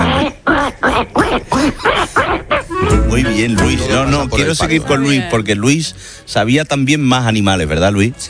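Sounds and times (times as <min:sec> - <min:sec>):
person imitating a duck quacking: 0:00.0 - 0:05.4
speech: 0:01.0 - 0:01.9, 0:03.2 - 0:08.2.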